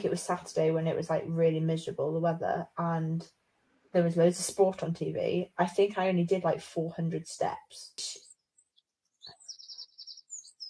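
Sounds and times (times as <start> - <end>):
speech: 0.0 - 8.2
birds tweeting outdoors heard through an open bedroom window: 8.1 - 10.6.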